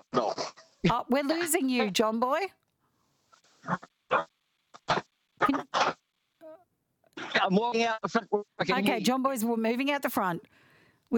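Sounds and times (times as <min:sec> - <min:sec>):
speech: 0:00.1 - 0:02.6, 0:03.7 - 0:04.3, 0:07.4 - 0:11.1
dog barking in short rough bursts: 0:03.6 - 0:06.0.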